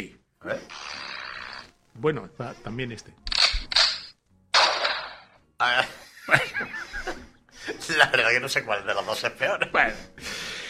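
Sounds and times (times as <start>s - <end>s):
speech: 0.0s - 0.8s, 2.0s - 3.3s, 5.6s - 6.7s, 8.0s - 10.3s
sharp gunshot bangs: 4.6s - 5.3s
people laughing: 5.8s - 8.2s.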